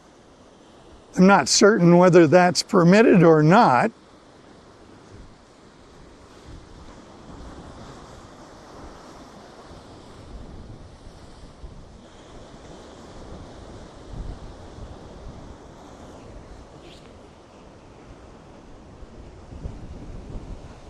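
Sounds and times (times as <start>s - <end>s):
ocean waves breaking on a beach in a cove: 0.0s - 20.8s
speech: 1.2s - 4.0s
gusty wind buffeting the microphone: 6.3s - 20.8s.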